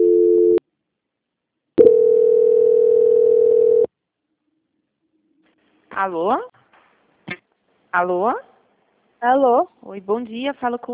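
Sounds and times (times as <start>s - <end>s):
telephone tones during call transfer: 0.0s - 0.6s, 1.8s - 3.9s
speech: 6.0s - 6.6s, 7.9s - 8.5s, 9.2s - 10.9s.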